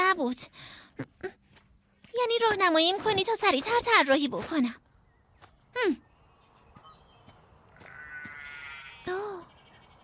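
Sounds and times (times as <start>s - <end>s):
speech: 0.2s - 1.3s, 2.2s - 4.9s, 5.8s - 6.0s, 9.1s - 9.5s
sheep bleating: 7.8s - 9.2s.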